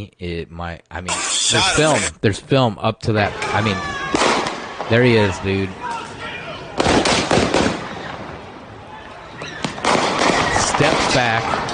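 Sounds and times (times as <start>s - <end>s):
speech: 0.0s - 4.0s, 4.9s - 5.9s, 10.8s - 11.7s
gunshots in recorded video footage: 4.1s - 5.2s, 6.8s - 8.3s, 9.6s - 11.7s.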